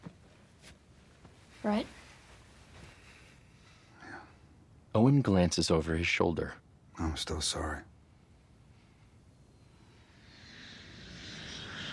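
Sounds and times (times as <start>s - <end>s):
speech: 1.6s - 2.0s, 5.0s - 7.9s
private jet engines roaring while rolling down tarmac: 10.2s - 11.9s.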